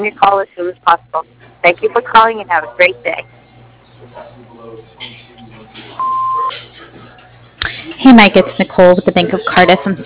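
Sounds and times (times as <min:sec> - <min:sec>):
speech: 0:00.0 - 0:03.4, 0:07.6 - 0:10.0
talking: 0:00.0 - 0:10.0
electronic answering machine beep on a company phone line: 0:06.0 - 0:06.6.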